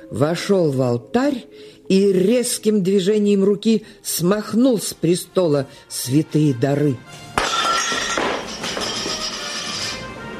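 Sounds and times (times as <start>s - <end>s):
speech: 0.1s - 7.3s
metal chalice and paten falling and clattering on the floor: 7.4s - 10.1s.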